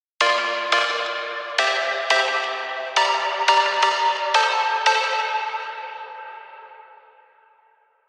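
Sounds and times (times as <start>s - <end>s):
rhythm chords: 0.2s - 6.4s.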